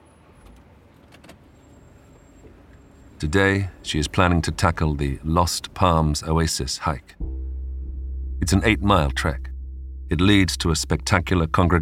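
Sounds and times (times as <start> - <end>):
speech: 3.2 - 7.2, 8.5 - 9.4, 10.1 - 11.8
car engine rumbling while pulling out of a driveway: 7.2 - 11.8.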